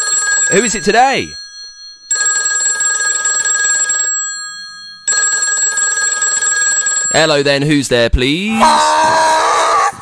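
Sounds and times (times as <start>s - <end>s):
telephone ringing: 0.0s - 7.5s
speech: 0.5s - 1.4s, 7.2s - 9.1s.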